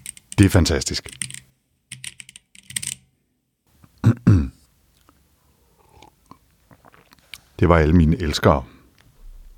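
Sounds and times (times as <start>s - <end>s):
typing on a computer keyboard: 0.0s - 0.4s, 1.1s - 3.0s
speech: 0.4s - 1.3s, 7.6s - 8.8s.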